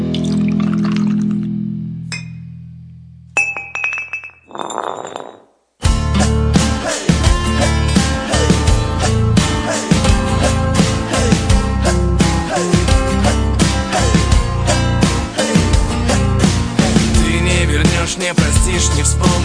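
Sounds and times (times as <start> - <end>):
liquid pouring into a glass: 0.1 - 1.5
glasses clinking: 2.1 - 2.4, 3.4 - 5.5
loud music: 5.9 - 19.4.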